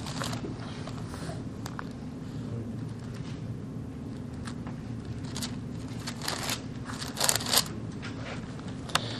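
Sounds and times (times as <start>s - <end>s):
audience turning thin Bible pages: 0.0s - 2.0s, 4.1s - 9.1s
low hum: 0.0s - 9.1s.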